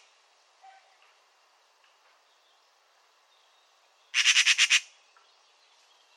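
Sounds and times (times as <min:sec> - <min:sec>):
Eurasian magpie giving harsh rattling chatter: 0:04.1 - 0:04.9.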